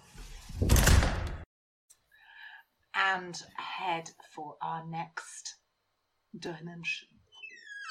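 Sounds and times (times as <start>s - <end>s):
door shutting with a loud full-bodied thud: 0.5s - 1.4s
speech: 3.1s - 5.5s, 6.3s - 7.1s.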